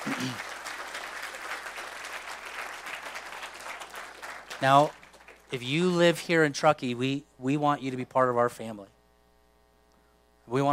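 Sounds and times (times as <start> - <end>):
audience applause at a church: 0.0 - 5.6
speech: 0.1 - 0.5, 4.6 - 9.0, 10.5 - 10.7.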